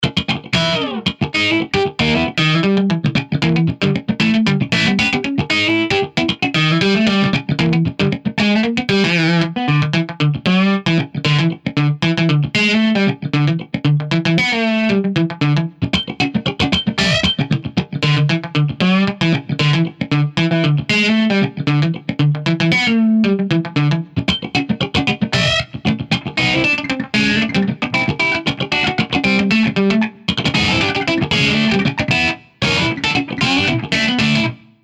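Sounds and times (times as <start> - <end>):
funky blues jazz guitar solo: 0.0 - 34.8.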